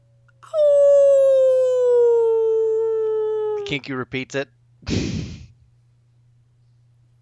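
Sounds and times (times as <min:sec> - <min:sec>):
faint low hum: 0:00.0 - 0:07.1
wolf howling in the woods: 0:00.4 - 0:03.8
speech: 0:03.7 - 0:05.4.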